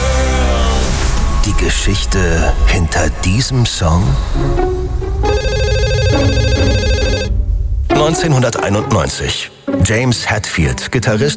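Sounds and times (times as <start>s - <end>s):
low rumbling background: 0.0s - 11.3s
speech: 1.6s - 5.3s, 8.0s - 11.3s
telephone ringing with buzzy electronic trill: 5.2s - 7.3s.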